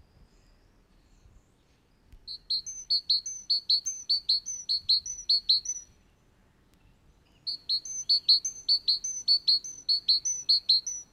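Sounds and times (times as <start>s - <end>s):
great tit singing: 2.3s - 6.0s, 7.2s - 11.1s.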